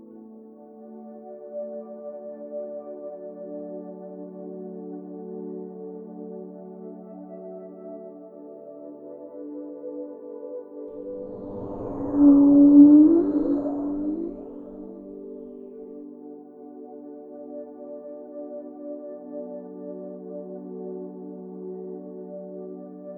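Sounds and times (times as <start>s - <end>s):
calming ocean noises: 11.0s - 15.4s
humpback whale calls: 11.0s - 15.6s
low ambient drone of layered sustained tones: 11.0s - 15.8s.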